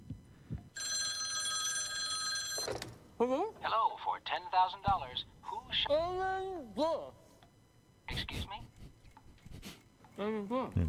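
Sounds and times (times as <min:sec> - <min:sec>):
telephone ringing: 0:00.7 - 0:03.1
speech: 0:02.7 - 0:07.2, 0:10.2 - 0:10.8.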